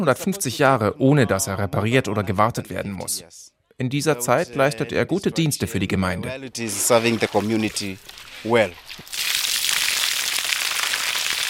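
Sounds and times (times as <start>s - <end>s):
speech: 0.0s - 9.3s
water poured into plastic jerrycan: 6.6s - 11.4s.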